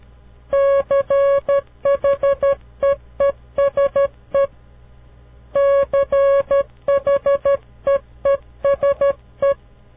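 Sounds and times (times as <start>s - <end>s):
faint hum: 0.0s - 9.9s
Morse code tones spelling a word: 0.5s - 4.5s, 5.6s - 9.6s.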